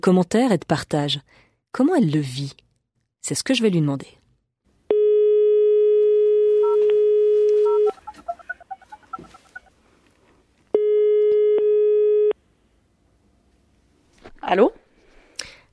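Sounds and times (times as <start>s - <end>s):
speech: 0.0s - 2.6s, 3.2s - 4.2s, 14.5s - 14.8s
telephone ringback tone while a call is placed: 4.9s - 8.2s, 10.8s - 12.4s
faint warbling chirps: 7.7s - 9.7s.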